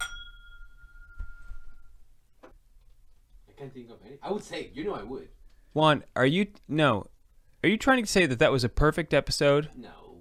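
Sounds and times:
glasses clinking together in a toast: 0:00.0 - 0:01.9
speech: 0:03.6 - 0:10.0.

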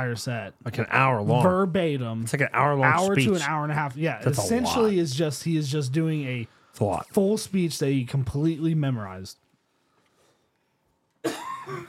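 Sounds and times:
speech: 0:00.0 - 0:09.4, 0:11.2 - 0:11.8
person coughing: 0:11.2 - 0:11.8.

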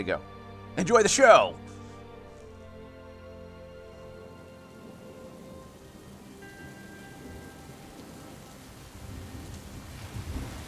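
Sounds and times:
speech: 0:00.0 - 0:01.7
heavy rain: 0:02.8 - 0:10.6
thunder rumbling: 0:03.4 - 0:10.6.

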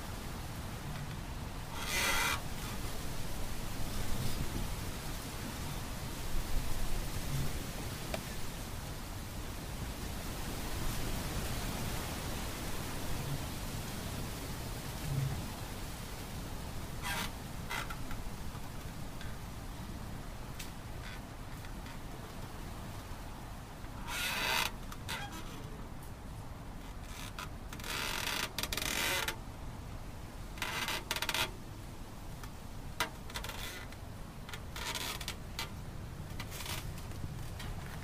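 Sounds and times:
trees rustling in wind: 0:00.0 - 0:38.0.

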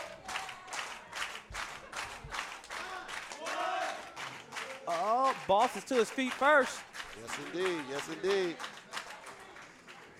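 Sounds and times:
large crowd at a wrestling match cheering and clapping: 0:00.0 - 0:10.1
excited shouting: 0:02.8 - 0:04.1
speech: 0:05.5 - 0:08.7.

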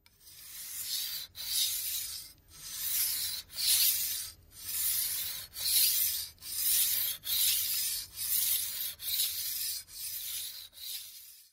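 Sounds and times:
metal blade scraping across a stone: 0:00.1 - 0:11.5.

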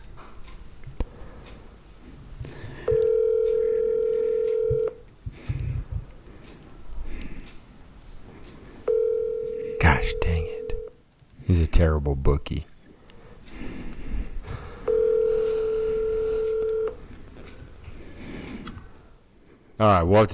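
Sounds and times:
faint clicks and rustling: 0:00.0 - 0:09.6, 0:12.8 - 0:19.1
buzzing phone line ringback tone: 0:02.8 - 0:05.0, 0:08.9 - 0:10.9, 0:14.9 - 0:17.0
speech: 0:11.8 - 0:12.7, 0:19.8 - 0:20.3.

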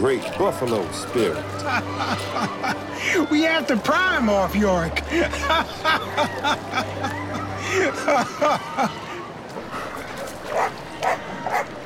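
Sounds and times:
speech: 0:00.0 - 0:09.0
laughter: 0:01.1 - 0:03.4, 0:04.9 - 0:09.4
dog barking and yipping excitedly: 0:09.7 - 0:11.7.

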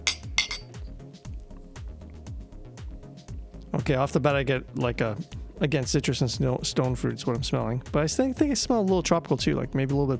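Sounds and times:
glasses of hazy IPA beer clinking in a toast: 0:00.0 - 0:00.9
speech: 0:03.7 - 0:10.1.

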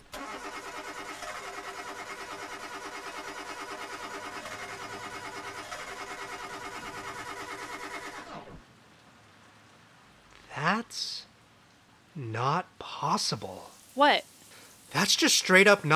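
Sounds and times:
car engine cranking, running and stalling: 0:00.2 - 0:08.5
speech: 0:13.2 - 0:14.3, 0:15.0 - 0:15.9.

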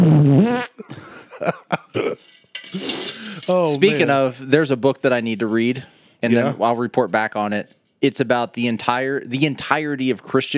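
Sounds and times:
loud buzzy fart: 0:00.0 - 0:00.8
speech: 0:03.5 - 0:10.5.

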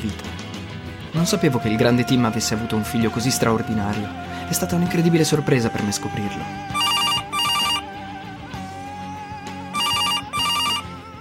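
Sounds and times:
speech: 0:00.0 - 0:00.3, 0:01.1 - 0:06.8
telephone ringing in bright buzzing trills: 0:06.8 - 0:07.9, 0:09.8 - 0:10.9.

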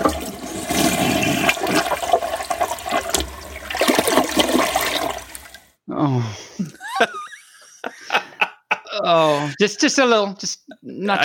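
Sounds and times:
toilet flushing with a rushing gurgling roar: 0:00.0 - 0:05.8
squeaky wheezing sounds sliding in pitch: 0:06.2 - 0:08.1
laughter: 0:06.4 - 0:10.0
speech: 0:09.1 - 0:11.2.

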